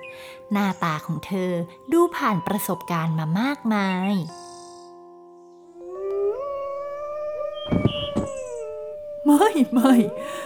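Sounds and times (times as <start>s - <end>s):
speech: 0.5s - 4.4s, 9.3s - 10.4s
several dogs howling together: 5.8s - 10.4s.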